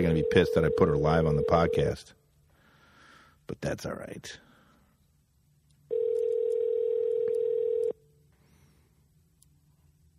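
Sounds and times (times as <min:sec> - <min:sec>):
phone call to a cell phone ringing through the line, unanswered: 0:00.0 - 0:02.0, 0:05.9 - 0:08.0
speech: 0:00.0 - 0:02.2, 0:03.5 - 0:04.4.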